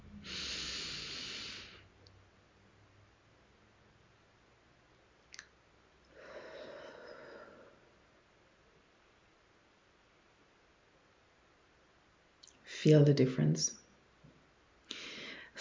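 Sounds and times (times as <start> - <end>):
deep breaths during a guided breathing exercise: 0.1 - 1.9, 6.1 - 8.0, 14.9 - 15.5
speech: 12.8 - 13.8.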